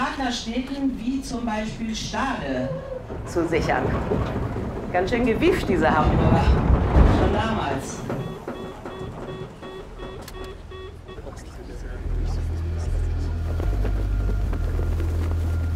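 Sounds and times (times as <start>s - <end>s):
speech: 0.2s - 8.2s
old tour boat engine struggling and stalling: 1.6s - 15.7s.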